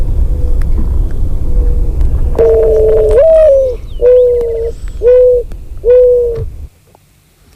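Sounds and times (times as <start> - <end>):
steady low rumble of noise: 0.0 - 6.8
Eurasian collared dove cooing in soft hollow notes: 2.3 - 6.7.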